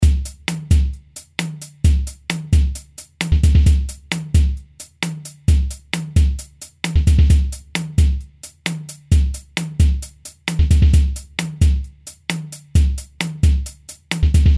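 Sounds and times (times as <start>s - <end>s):
action rhythm music: 0.0s - 14.5s.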